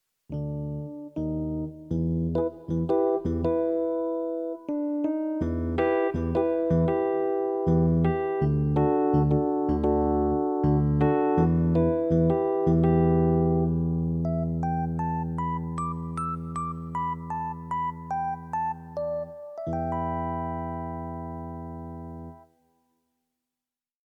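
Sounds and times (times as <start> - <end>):
electric stage piano: 0.3 - 22.6.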